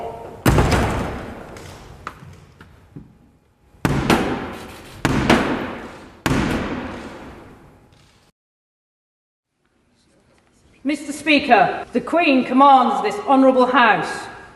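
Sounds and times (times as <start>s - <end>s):
House of Commons door slamming shut with a booming echo: 0.0s - 2.0s, 3.8s - 7.6s
speech: 10.9s - 14.3s.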